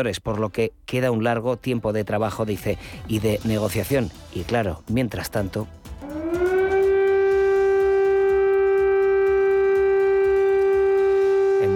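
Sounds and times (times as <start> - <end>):
speech: 0.0 - 6.2
air raid siren wailing in a Ukrainian city: 6.0 - 11.7.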